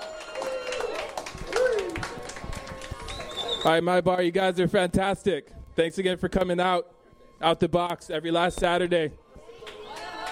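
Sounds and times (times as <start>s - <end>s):
audience clapping: 0.0s - 3.8s, 9.6s - 10.3s
people whooping and cheering: 0.0s - 3.8s, 9.3s - 10.3s
speech: 3.6s - 9.8s.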